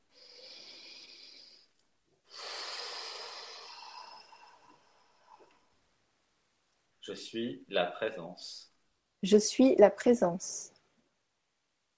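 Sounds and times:
person breathing in and out in a breathing exercise: 0.0s - 5.7s
speech: 7.1s - 10.7s.

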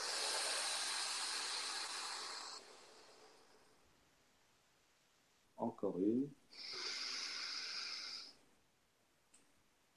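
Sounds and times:
deep breath in and out during a guided relaxation breathing exercise: 0.0s - 3.9s, 6.5s - 8.5s
speech: 5.8s - 6.8s.

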